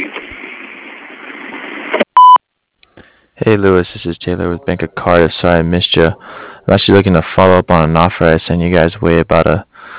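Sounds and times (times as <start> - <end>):
answering machine beep: 2.2 - 2.4
speech: 3.4 - 9.7.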